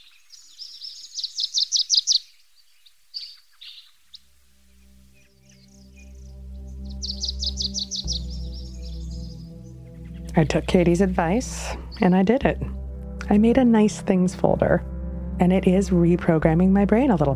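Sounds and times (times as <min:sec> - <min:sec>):
birds chirping in quick bright trilling bursts: 0:00.0 - 0:17.3
low steady humming tone: 0:04.7 - 0:17.3
speech: 0:10.4 - 0:17.3.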